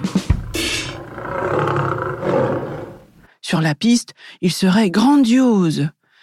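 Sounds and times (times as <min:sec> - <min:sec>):
lion roaring: 0:00.5 - 0:03.2
speech: 0:03.5 - 0:06.0.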